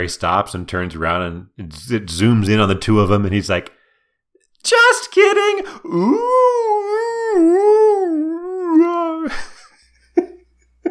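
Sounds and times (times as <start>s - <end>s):
speech: 0.0s - 3.8s, 4.6s - 8.0s
person imitating whale song with a long moaning tone: 5.8s - 9.3s.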